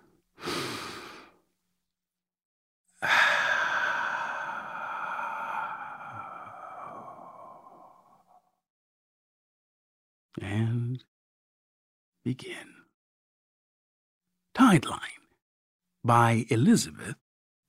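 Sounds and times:
short rushing inhale before a story reading: 0:00.4 - 0:01.4, 0:03.0 - 0:08.6
long slow airy exhale: 0:03.0 - 0:08.5
speech: 0:12.2 - 0:12.7, 0:14.6 - 0:15.2, 0:16.0 - 0:17.2.

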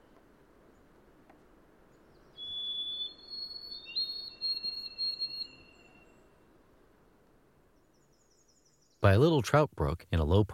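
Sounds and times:
faint steady background noise: 0:00.0 - 0:10.5
White-throated Sparrow singing plaintive whistled song: 0:01.9 - 0:06.4, 0:07.8 - 0:09.0
speech: 0:09.0 - 0:10.5.

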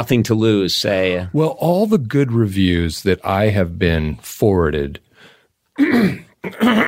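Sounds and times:
speech: 0:00.0 - 0:05.1, 0:05.8 - 0:06.8
rough throaty coughs: 0:05.8 - 0:06.8.

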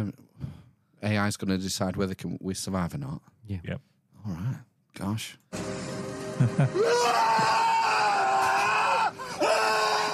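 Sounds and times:
speech: 0:01.0 - 0:05.7, 0:06.4 - 0:07.7
man screaming in a film clip: 0:06.8 - 0:10.1.

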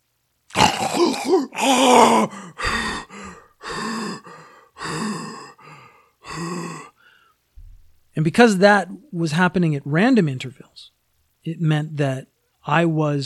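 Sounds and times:
person vocally imitating a loud rasping giant snore: 0:00.5 - 0:05.6, 0:06.2 - 0:07.0
speech: 0:01.1 - 0:02.8, 0:08.2 - 0:13.2
heavy rhythmic panting breaths: 0:01.6 - 0:07.4.

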